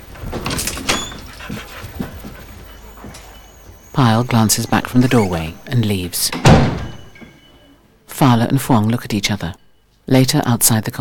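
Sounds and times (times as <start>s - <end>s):
dog paws padding across the floor: 0.1s - 5.7s
speech: 4.0s - 6.7s, 8.2s - 11.0s.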